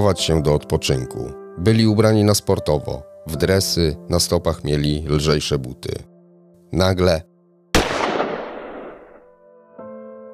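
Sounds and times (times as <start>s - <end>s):
speech: 0.0s - 6.1s, 6.7s - 7.3s
single loud gunshot with tail: 7.8s - 9.2s.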